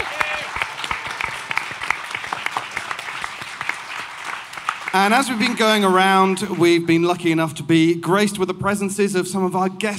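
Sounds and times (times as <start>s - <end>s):
audience applause: 0.0s - 7.1s
speech: 4.9s - 9.9s.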